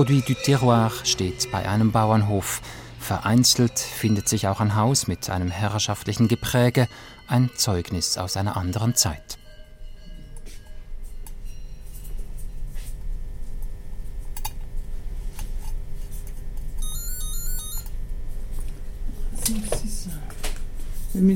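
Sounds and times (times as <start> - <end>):
speech: 0.0 - 9.4
short electronic telephone trill: 16.8 - 17.9.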